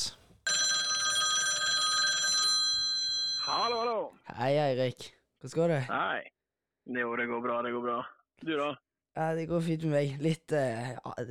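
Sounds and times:
telephone ringing on an outgoing call: 0.5s - 4.0s
speech: 4.0s - 11.2s.

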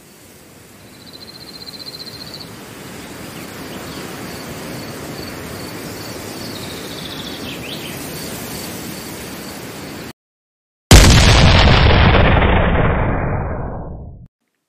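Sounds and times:
crickets chirping in the night air: 0.0s - 10.1s
loud cannon shot booming and rumbling: 10.9s - 14.3s.

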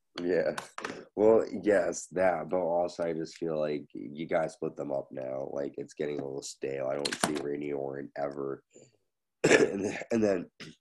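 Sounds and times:
speech: 0.2s - 10.7s
person coughing: 9.4s - 10.1s
person clearing throat: 9.4s - 10.2s.

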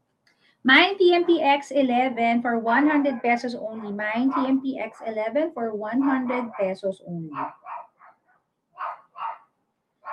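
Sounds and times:
speech: 0.6s - 7.8s
dog barking: 3.0s - 4.6s, 6.0s - 6.7s, 7.3s - 8.0s, 8.8s - 10.1s.

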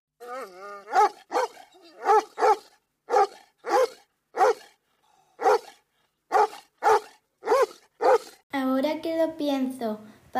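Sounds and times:
dog whining: 0.2s - 4.6s, 6.3s - 8.4s
dog barking happily: 0.9s - 4.8s, 5.4s - 8.4s
speech: 9.0s - 10.3s.

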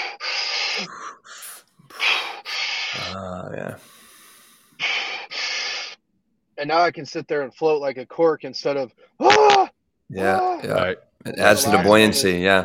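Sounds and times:
forceful power breathing with lungs fully inflated: 0.0s - 6.0s
speech: 0.8s - 1.0s, 3.1s - 3.9s, 6.6s - 12.6s
low voiced sound: 3.0s - 3.8s, 10.1s - 12.6s.

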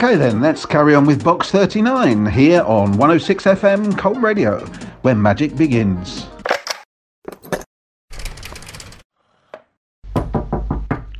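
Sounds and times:
speech: 0.0s - 6.3s
loud knocking on a door: 10.0s - 11.1s.

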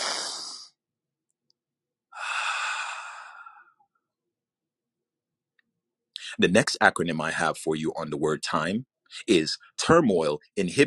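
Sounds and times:
deep breaths drawn in: 2.1s - 3.8s
speech: 6.4s - 10.8s.

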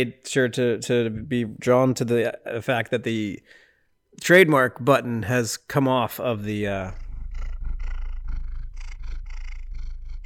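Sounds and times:
speech: 0.0s - 3.6s, 4.2s - 7.0s
domestic cat purring: 6.3s - 10.2s.

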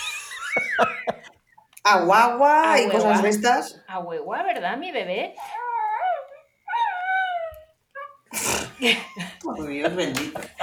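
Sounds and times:
laughter: 0.0s - 1.4s
speech: 1.8s - 5.6s, 8.8s - 10.6s
dog howling and whimpering: 5.5s - 8.3s.

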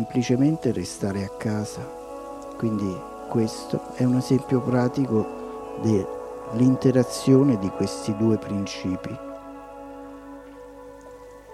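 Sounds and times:
speech: 0.0s - 2.0s, 2.6s - 9.3s
steady rain falling: 0.0s - 11.5s.

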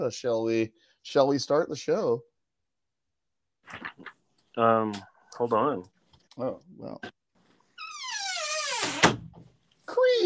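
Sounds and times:
speech: 0.0s - 2.3s, 3.7s - 7.2s
door creaking open: 7.7s - 9.4s.

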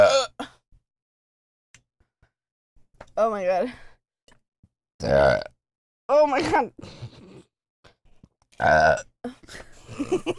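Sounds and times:
burp after chugging a drink: 0.0s - 0.5s, 5.0s - 5.6s, 8.6s - 9.1s
speech: 3.2s - 3.9s, 5.0s - 5.5s, 6.1s - 7.3s, 8.6s - 10.3s.

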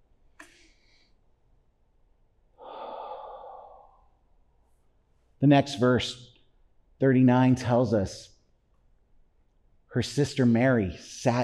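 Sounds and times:
group taking a deep breath together during a Bible teaching: 2.6s - 4.2s
speech: 5.4s - 6.3s, 7.0s - 8.3s, 10.0s - 11.4s.

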